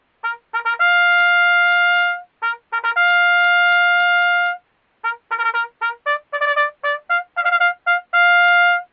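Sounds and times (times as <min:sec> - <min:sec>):
military bugle call: 0:00.2 - 0:08.9.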